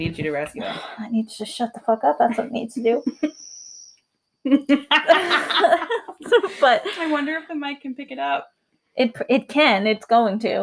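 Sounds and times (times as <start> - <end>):
speech: 0.0 - 3.4, 4.4 - 10.6
cricket's shrill steady trill: 0.8 - 9.1
person laughing in bursts of chuckling: 2.3 - 3.4, 4.5 - 7.4.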